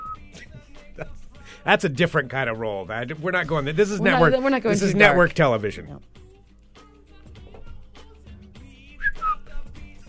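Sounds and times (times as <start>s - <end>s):
person whistling a tune: 0.0s - 0.5s, 9.0s - 9.6s
speech: 1.0s - 6.2s.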